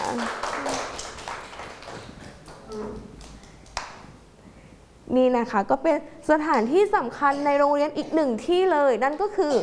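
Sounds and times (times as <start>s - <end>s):
small group of children clapping hands: 0.0s - 4.0s
speech: 0.1s - 0.8s, 5.1s - 9.6s
faint voice murmuring: 2.7s - 3.2s.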